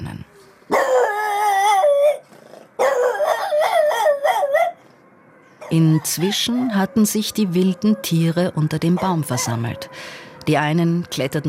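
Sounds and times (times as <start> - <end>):
dogs howling in long wavering cries: 0.7 - 4.8, 5.6 - 11.4
dogs yelping barks: 0.7 - 4.9, 5.6 - 10.0
speech: 5.7 - 11.4.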